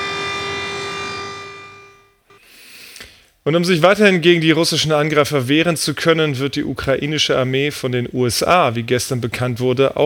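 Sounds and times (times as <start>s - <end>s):
air raid siren wailing: 0.0s - 2.2s
speech: 3.4s - 10.0s.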